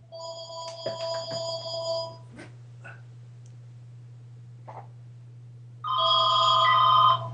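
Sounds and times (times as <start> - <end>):
telephone ringing with electronic trill: 0.1 - 2.2, 5.8 - 7.3.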